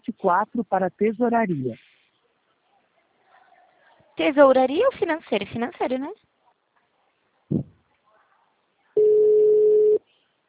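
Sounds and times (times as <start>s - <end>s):
speech: 0.1s - 1.9s, 4.2s - 6.3s
telephone ringback tone on an outgoing call: 9.0s - 10.0s.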